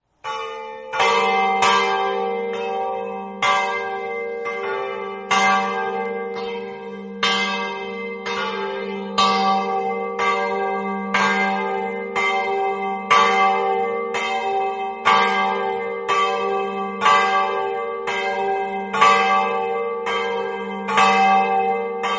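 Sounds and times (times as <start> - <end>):
bells in Duino: 0.2 - 22.1.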